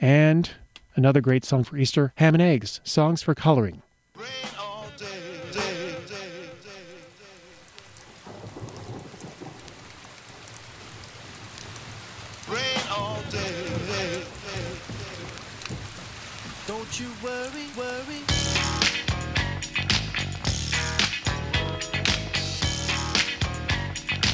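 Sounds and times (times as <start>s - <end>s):
speech: 0.0s - 4.6s
steady rain: 5.6s - 24.3s.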